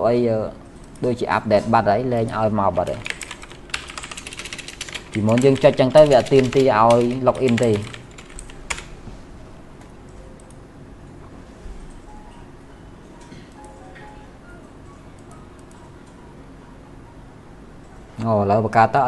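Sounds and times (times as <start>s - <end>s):
speech: 0.0s - 3.1s, 5.2s - 8.0s, 18.2s - 19.0s
typing on a computer keyboard: 2.9s - 8.9s.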